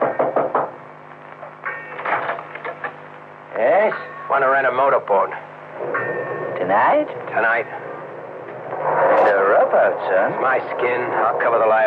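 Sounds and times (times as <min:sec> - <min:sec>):
firm knocking on a door: 0:00.0 - 0:00.8
low steady hum: 0:00.0 - 0:11.8
speech: 0:03.6 - 0:06.0, 0:06.6 - 0:07.9, 0:09.0 - 0:11.8.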